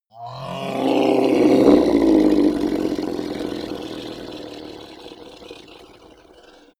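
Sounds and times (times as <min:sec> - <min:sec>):
hellhound roaring and growling: 0:00.1 - 0:06.7.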